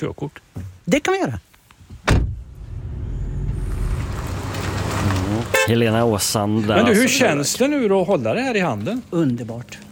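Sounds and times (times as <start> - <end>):
speech: 0.0 - 2.2, 5.6 - 9.9
small car engine rumbling as it pulls away: 1.9 - 6.8
car door slamming: 2.0 - 2.9.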